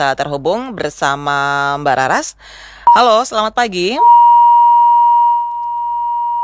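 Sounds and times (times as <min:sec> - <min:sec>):
speech: 0:00.0 - 0:04.2
steady single-pitch telephone beep tone: 0:02.9 - 0:03.1, 0:04.0 - 0:06.4.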